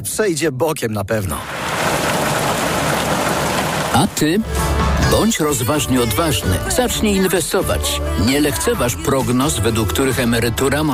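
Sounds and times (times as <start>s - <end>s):
speech: 0.0s - 2.1s, 3.9s - 10.9s
steady dense rain: 1.4s - 4.4s.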